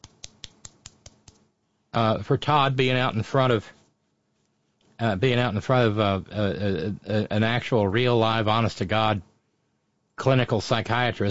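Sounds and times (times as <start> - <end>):
soft golf clap: 0.0 - 1.4
speech: 2.0 - 3.8, 5.0 - 9.3, 10.2 - 11.2.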